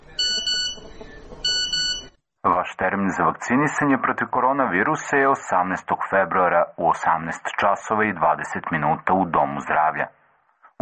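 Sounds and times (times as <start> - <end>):
phone message notification beeping: 0.0 - 2.1
speech: 2.8 - 10.2.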